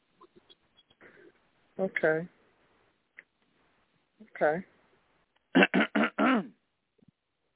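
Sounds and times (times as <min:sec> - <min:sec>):
speech: 0:01.8 - 0:02.4, 0:04.4 - 0:04.7, 0:06.2 - 0:06.6
man clearing his throat: 0:05.6 - 0:06.6.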